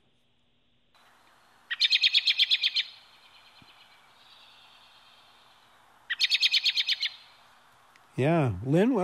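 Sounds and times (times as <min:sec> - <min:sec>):
American Robin chirr warning call of rapid sharp high notes: 0:01.0 - 0:08.1
speech: 0:08.2 - 0:09.0.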